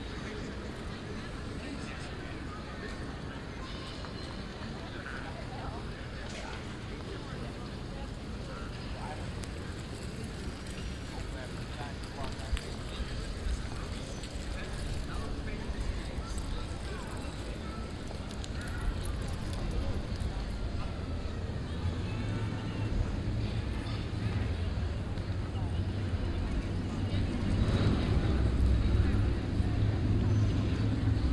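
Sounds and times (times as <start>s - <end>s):
many overlapping voices chattering on cafe terraces: 0.0s - 31.3s.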